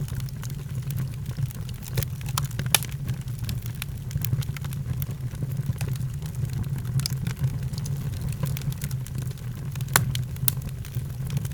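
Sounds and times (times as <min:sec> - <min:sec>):
fire crackling: 0:00.0 - 0:11.5.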